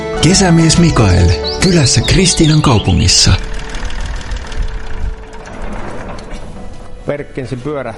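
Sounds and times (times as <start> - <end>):
Perkins T6 diesel tractor engine idling: 0.2 - 5.5
speech: 0.3 - 3.5, 7.1 - 7.9.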